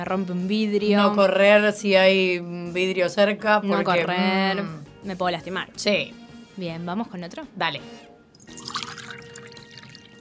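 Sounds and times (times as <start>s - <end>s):
speech: 0.0s - 8.7s
water being poured: 8.4s - 10.2s.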